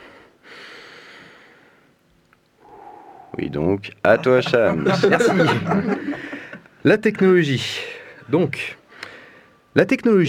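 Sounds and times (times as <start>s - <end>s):
long deep breath drawn in close to the microphone: 0.0s - 2.0s, 2.6s - 3.5s, 6.0s - 6.7s, 8.9s - 9.7s
speech: 3.4s - 8.8s, 9.8s - 10.2s
laughter: 4.1s - 6.7s.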